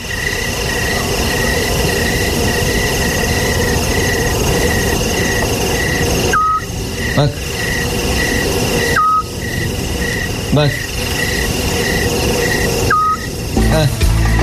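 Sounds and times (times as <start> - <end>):
loud constant hiss: 0.0 - 14.4
scops owl calling with short whistled notes: 6.3 - 6.7, 8.8 - 9.3, 12.8 - 13.3
speech: 7.2 - 7.4, 10.6 - 10.8.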